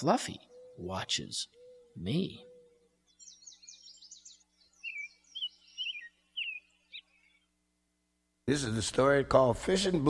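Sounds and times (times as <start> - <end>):
speech: 0.0 - 2.5, 8.5 - 10.0
small birds chirping outdoors around a feeder: 0.0 - 7.6.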